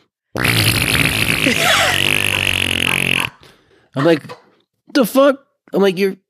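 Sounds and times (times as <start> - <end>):
raspberry-style fart noise made with the mouth: 0.4 - 3.4
speech: 1.4 - 2.1, 4.0 - 4.4, 5.0 - 6.2.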